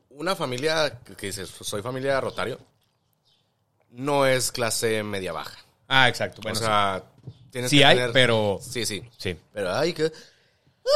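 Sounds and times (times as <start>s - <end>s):
speech: 0.2s - 2.7s, 3.9s - 10.9s
quiet breath: 10.1s - 10.8s.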